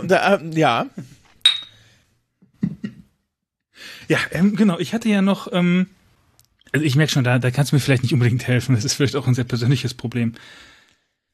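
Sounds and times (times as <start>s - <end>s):
speech: 0.0s - 1.0s, 3.8s - 6.0s, 6.7s - 10.7s
wine glasses clinking in a toast: 1.4s - 1.8s.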